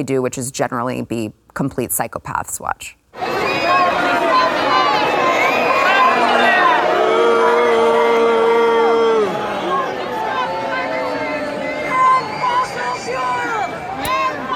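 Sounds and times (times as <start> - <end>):
speech: 0.0 - 3.0
large crowd booing and shouting: 3.2 - 14.5.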